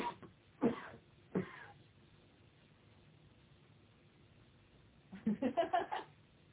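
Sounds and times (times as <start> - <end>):
person coughing: 0.0 - 1.8.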